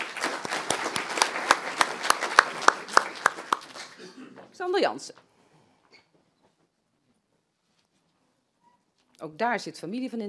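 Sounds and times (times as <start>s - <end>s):
audience applauding after a swearing-in oath: 0.0s - 4.1s
speech: 4.7s - 5.3s, 9.2s - 10.2s.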